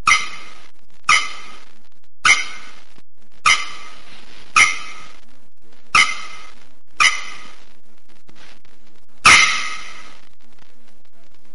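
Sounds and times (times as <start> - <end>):
bearded bellbird song of loud explosive metallic clangs: 0.0 - 1.6, 2.3 - 2.8, 3.5 - 4.0, 4.6 - 5.1, 6.0 - 7.6.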